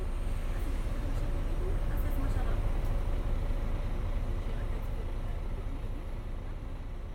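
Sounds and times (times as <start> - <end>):
rumble of slight traffic passing outside a window: 0.0 - 7.1.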